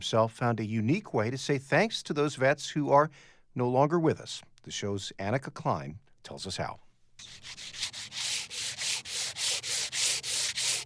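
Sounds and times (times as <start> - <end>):
speech: 0.0 - 7.8
sandpaper on a holder sanding a headstone: 7.2 - 10.8.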